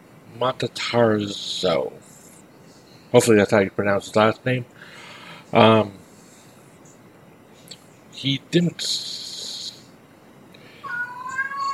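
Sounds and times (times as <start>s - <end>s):
speech: 0.4s - 2.0s, 3.1s - 6.0s, 8.2s - 9.3s
male cat meowing to be let out: 10.8s - 11.7s.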